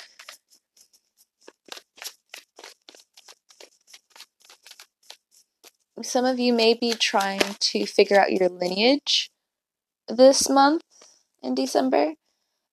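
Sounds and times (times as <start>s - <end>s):
tarot cards being shuffled: 0.0s - 5.8s, 6.5s - 9.0s
speech: 6.0s - 9.3s, 10.1s - 12.2s.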